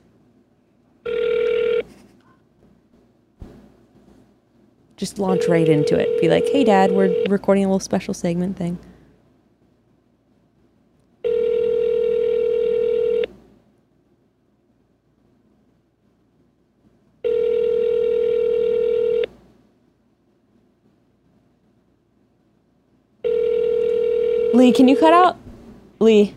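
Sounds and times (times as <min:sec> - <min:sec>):
telephone ringing heard by the caller during an outgoing call: 0:01.0 - 0:01.9, 0:05.0 - 0:07.4, 0:11.2 - 0:13.3, 0:17.2 - 0:19.3, 0:23.2 - 0:25.2
speech: 0:05.0 - 0:08.9, 0:24.6 - 0:25.4, 0:26.0 - 0:26.3.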